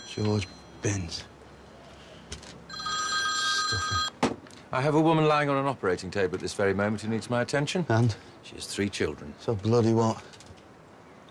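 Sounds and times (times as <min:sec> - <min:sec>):
telephone ringing: 0:00.0 - 0:01.2, 0:02.7 - 0:04.2
speech: 0:00.2 - 0:01.3, 0:04.7 - 0:10.4.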